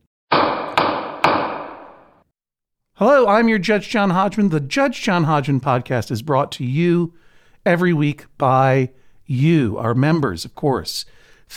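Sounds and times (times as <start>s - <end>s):
wooden gavel striking: 0.3s - 2.2s
speech: 3.0s - 11.5s.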